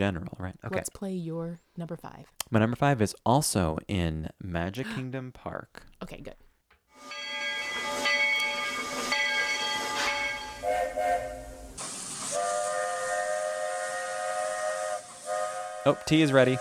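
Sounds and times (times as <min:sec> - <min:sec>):
speech: 0:00.0 - 0:06.4, 0:15.8 - 0:16.6
steam train whistle blasts: 0:07.0 - 0:16.6.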